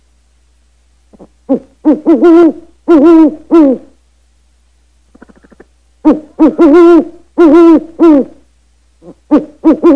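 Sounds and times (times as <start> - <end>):
faint low hum: 0.0 - 9.9
Indonesian bird hooting calls: 1.1 - 4.0, 5.1 - 8.4, 9.0 - 9.9.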